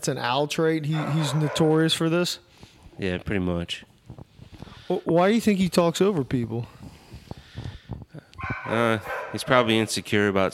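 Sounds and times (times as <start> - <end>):
speech: 0.0 - 3.9, 4.9 - 6.8, 8.7 - 10.5
female dog barking: 0.9 - 2.0, 8.4 - 9.7.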